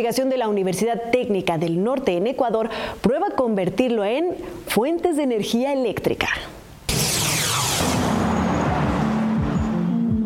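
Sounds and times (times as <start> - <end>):
speech: 0.0 - 6.6
dense rumbling roar of road traffic: 7.5 - 10.2
cars passing by with engine tones sliding downward: 7.8 - 10.2.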